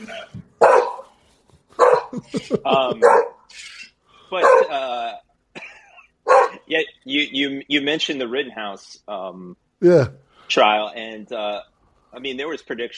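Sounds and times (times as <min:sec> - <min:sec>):
dog barking: 0:00.6 - 0:01.1, 0:01.8 - 0:02.3, 0:02.9 - 0:03.4, 0:04.4 - 0:04.8, 0:06.3 - 0:06.7
laughter: 0:02.1 - 0:03.2
speech: 0:02.2 - 0:03.6, 0:04.3 - 0:05.2, 0:06.7 - 0:12.9.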